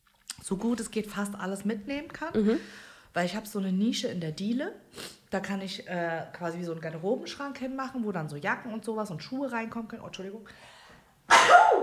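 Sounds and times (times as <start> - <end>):
speech: 0.4 - 10.8
single loud sneeze: 11.3 - 11.8.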